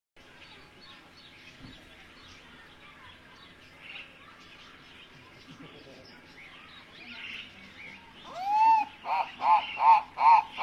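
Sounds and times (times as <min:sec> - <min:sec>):
white-crested turaco calling: 0:08.1 - 0:10.6.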